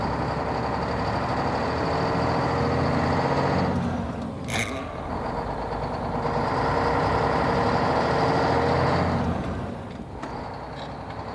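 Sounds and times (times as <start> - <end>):
heavy old truck engine rumbling as it sets off: 0.0 - 11.3
clank: 4.4 - 5.7.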